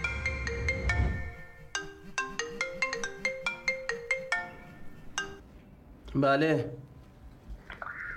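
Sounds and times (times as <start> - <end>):
mobile phone ringtone: 0.0 - 5.4
speech: 6.2 - 6.8.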